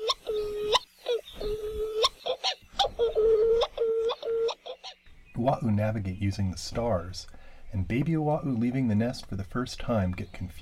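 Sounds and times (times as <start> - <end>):
Hawaiian petrel seabird moaning calls: 0.0 - 5.0
speech: 5.5 - 10.6.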